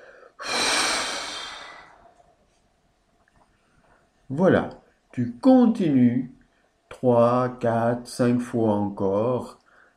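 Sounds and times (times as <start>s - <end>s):
forceful breath blown out hard through the mouth during a deep-breathing exercise: 0.0s - 2.1s
speech: 4.3s - 6.4s, 7.0s - 9.6s.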